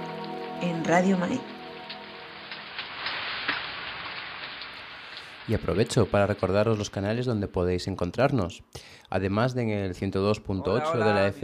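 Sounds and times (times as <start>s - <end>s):
steady rain falling: 0.0s - 8.1s
speech: 0.6s - 1.5s, 5.5s - 11.4s.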